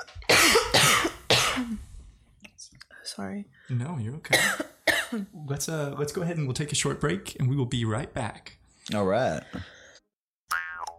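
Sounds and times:
harsh forceful chesty coughs: 0.0 - 1.9, 4.3 - 5.3
speech: 3.2 - 9.7.

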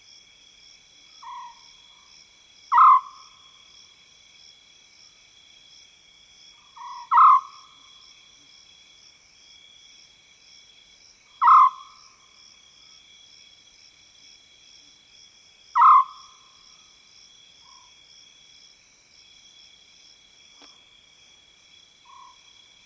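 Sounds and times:
insects trilling in savanna woodland: 1.2 - 22.8
African scops owl calling in savanna woodland at night: 2.7 - 3.2, 6.8 - 7.7, 11.4 - 12.0, 15.8 - 16.3.

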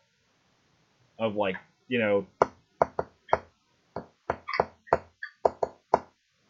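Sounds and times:
speech: 1.2 - 2.4
fingernail rapping a secret knock on a white door: 2.4 - 3.4, 4.0 - 6.1.

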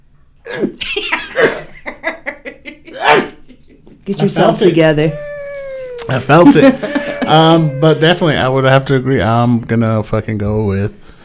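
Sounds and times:
speech: 0.4 - 1.6, 4.1 - 5.2, 6.1 - 11.0
sneeze: 0.4 - 1.8, 3.0 - 3.5
laughter: 0.8 - 4.0, 5.1 - 8.5.

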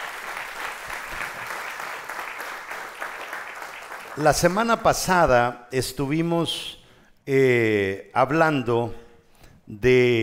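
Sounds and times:
audience applauding loudly: 0.0 - 4.6
speech: 4.2 - 9.0, 9.7 - 10.2.

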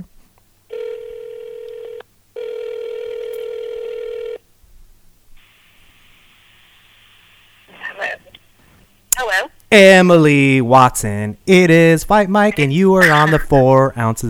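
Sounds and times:
phone line ringing back during an outgoing call: 0.7 - 4.4
faint phone line hiss: 4.5 - 9.8
speech: 9.7 - 14.2.

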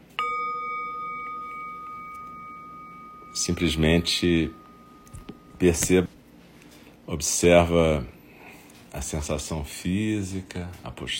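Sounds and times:
meditation bell struck and ringing: 0.0 - 6.1
speech: 3.4 - 4.6, 5.6 - 6.2, 7.1 - 8.2, 8.9 - 11.1.

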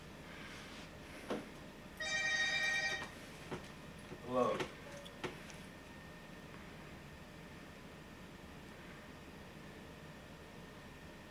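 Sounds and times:
mobile phone ringtone chime: 2.0 - 3.1
speech: 4.3 - 4.8.

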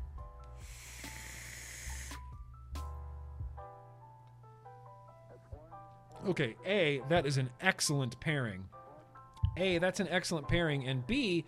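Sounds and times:
0.25 vape coil firing at 53 watts, hissing and crackling: 0.5 - 2.4
speech: 6.2 - 8.8, 9.6 - 11.4.

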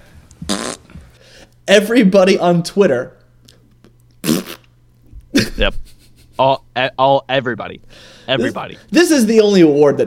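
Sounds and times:
raspy fart noise sound effect: 0.4 - 1.1, 4.2 - 4.7
speech: 1.7 - 3.2, 5.6 - 5.8, 6.4 - 10.0.

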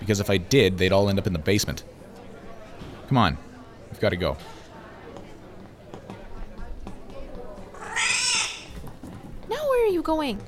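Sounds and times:
speech: 0.1 - 2.0, 3.1 - 4.6, 10.0 - 10.4
indistinct voices: 7.7 - 8.8
cat meowing, high and strained: 7.8 - 8.8.

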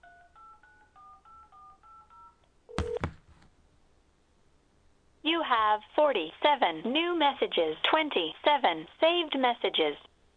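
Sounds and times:
touch-tone dialing beeps on a landline phone keypad: 2.0 - 3.0
speech: 5.5 - 10.1.

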